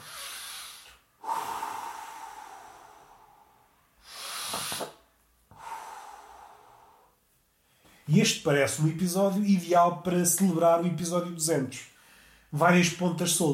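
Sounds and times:
heavy airy breathing: 0.0s - 8.0s
speech: 8.1s - 11.9s, 12.5s - 13.5s.

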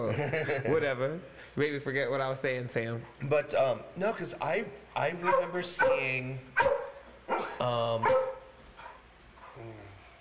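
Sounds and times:
laughter: 0.0s - 1.0s
speech: 0.0s - 6.7s, 7.6s - 8.2s
dog barking: 5.2s - 9.0s.

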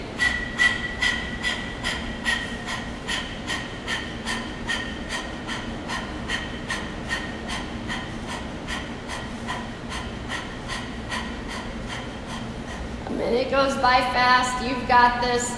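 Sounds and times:
forceful rhythmic panting breaths: 0.0s - 13.1s
speech: 13.6s - 15.5s.

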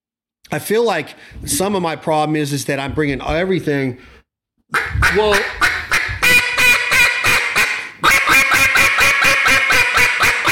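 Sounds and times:
speech: 0.5s - 5.7s
duck call imitating a hen mallard quacking: 4.7s - 10.4s.

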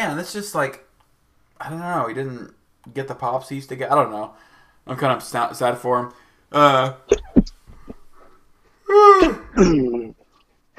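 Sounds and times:
speech: 0.0s - 0.9s, 1.6s - 7.5s, 8.9s - 10.2s
sneeze with nasal bursts and voiced gasps: 9.0s - 10.0s.

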